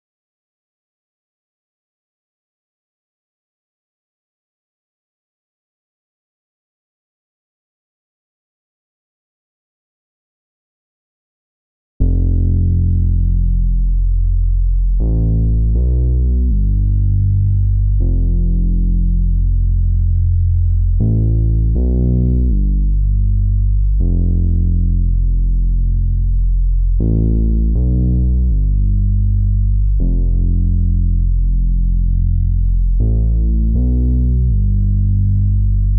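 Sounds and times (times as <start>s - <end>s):
bass loop in C major at 80 BPM: 12.0s - 35.9s.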